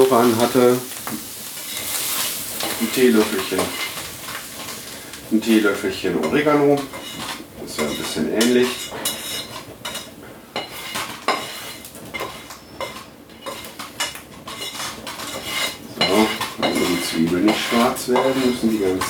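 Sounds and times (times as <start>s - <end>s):
food scraped and tipped into a taller frying pan: 0.0s - 19.0s
metal clinks and clatters from utensils and cookware: 0.0s - 19.0s
speech: 0.1s - 0.9s, 2.8s - 3.9s, 5.3s - 7.2s, 7.8s - 9.0s, 17.7s - 19.0s.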